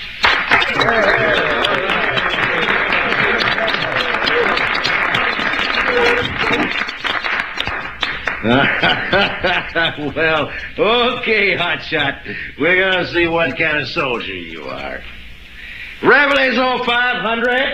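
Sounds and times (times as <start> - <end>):
crowd applauding: 0.0 - 14.7
people cheering: 0.0 - 15.0
laughter: 0.6 - 13.8
chatter: 0.6 - 15.1
speech: 0.8 - 1.4, 8.4 - 15.1, 16.0 - 17.7.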